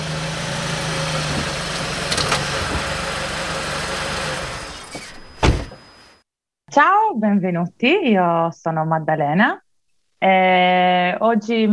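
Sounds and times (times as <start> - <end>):
rental car engine idling on a cold winter day in Sweden: 0.0 - 4.8
speech: 6.8 - 9.6, 10.2 - 11.7.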